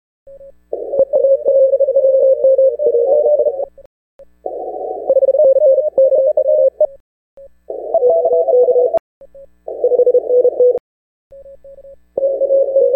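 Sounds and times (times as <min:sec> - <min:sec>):
CW morse code signals on 10 and 15 meter amateur radio: 0:00.8 - 0:03.7, 0:04.5 - 0:06.9, 0:07.7 - 0:09.0, 0:09.7 - 0:10.8, 0:12.2 - 0:12.9.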